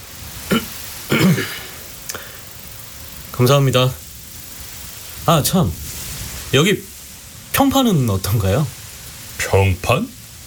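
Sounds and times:
man awkwardly clearing his throat: 0:00.5 - 0:01.8
speech: 0:03.4 - 0:04.0, 0:05.3 - 0:05.8, 0:06.5 - 0:06.9, 0:07.6 - 0:08.8, 0:09.4 - 0:10.2.

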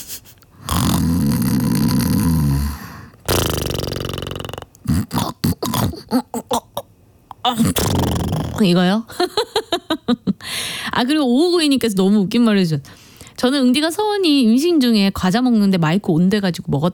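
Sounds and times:
person imitating snoring: 0:00.6 - 0:06.8, 0:07.5 - 0:08.8
speech: 0:08.6 - 0:09.3, 0:11.0 - 0:16.9.

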